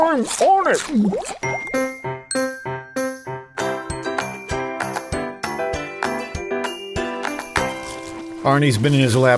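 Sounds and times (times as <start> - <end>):
speech: 0.0 - 1.7, 8.4 - 9.3
bell-like chime transition jingle: 1.4 - 8.0.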